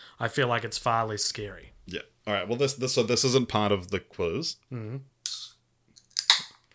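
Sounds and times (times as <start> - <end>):
speech: 0.2 - 5.1
bitter beer can metallic cracks and crinkles: 6.0 - 6.7.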